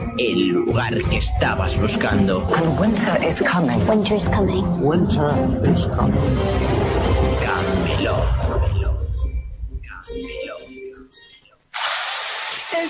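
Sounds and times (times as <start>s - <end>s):
speech: 0.2s - 8.7s
renovation power drilling: 11.7s - 12.8s.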